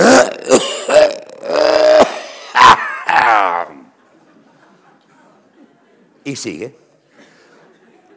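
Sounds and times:
strained drawn-out vocal groans: 0:00.0 - 0:02.2
voice imitating an audience member coughing: 0:00.0 - 0:03.9
speech: 0:06.3 - 0:06.9.

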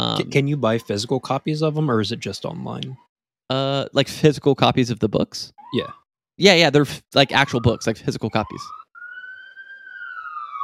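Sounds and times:
speech: 0:00.0 - 0:08.8
police siren wailing outside: 0:00.2 - 0:02.0, 0:07.2 - 0:10.6.

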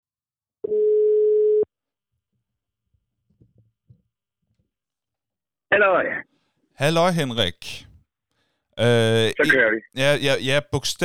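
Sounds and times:
telephone ringback tone of an outgoing call: 0:00.6 - 0:01.7
speech: 0:00.7 - 0:00.9, 0:05.8 - 0:07.9, 0:08.8 - 0:11.0.

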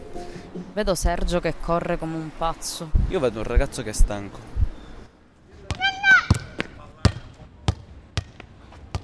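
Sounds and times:
speech: 0:00.8 - 0:04.6
child's ball bouncing on hard pavement: 0:05.6 - 0:09.0
small child calling out in a high-pitched voice: 0:05.8 - 0:06.4.

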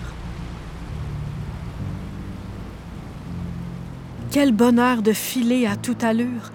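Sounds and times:
strong wind rushing over the sails of a sailboat at sea: 0:00.0 - 0:04.3
speech: 0:04.4 - 0:06.5.

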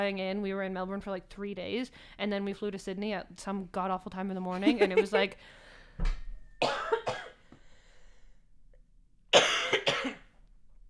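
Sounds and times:
speech: 0:00.0 - 0:06.7
person coughing: 0:06.6 - 0:07.4, 0:09.3 - 0:10.3.

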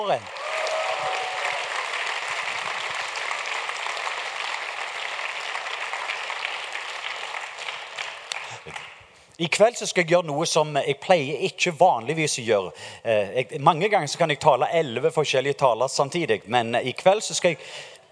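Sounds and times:
speech: 0:00.0 - 0:00.4, 0:08.7 - 0:18.0
large crowd clapping at a Christian worship meeting in Norway: 0:00.0 - 0:09.0.

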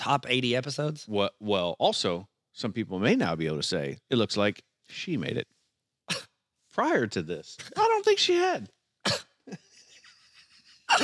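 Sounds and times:
speech: 0:00.0 - 0:05.6, 0:06.8 - 0:09.6
person coughing: 0:06.1 - 0:06.3, 0:09.0 - 0:09.7, 0:10.9 - 0:11.0.

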